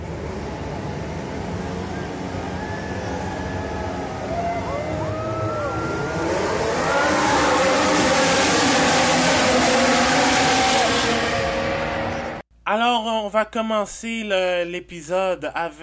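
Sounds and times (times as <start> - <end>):
Formula 1 car engines roaring at the start of a 2018 Grand Prix: 0.0 - 12.4
speech: 13.3 - 15.8.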